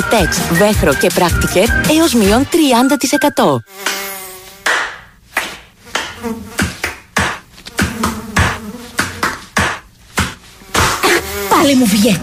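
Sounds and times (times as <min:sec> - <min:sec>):
speech: 0:00.1 - 0:03.9, 0:06.2 - 0:06.6, 0:11.6 - 0:12.2
mosquito buzzing: 0:03.6 - 0:04.8, 0:05.8 - 0:06.8, 0:07.6 - 0:12.2
sharp hand slaps: 0:03.8 - 0:11.0.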